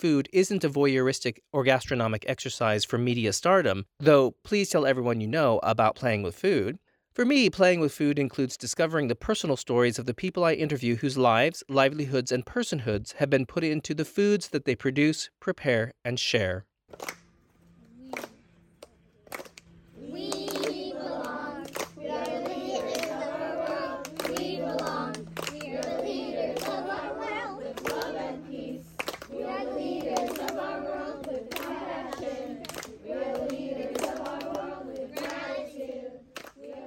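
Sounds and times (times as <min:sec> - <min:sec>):
speech: 0:00.0 - 0:17.2
sharp hand claps: 0:16.9 - 0:17.2, 0:18.1 - 0:36.7
children at a summer camp singing their daily camp song: 0:19.9 - 0:36.8.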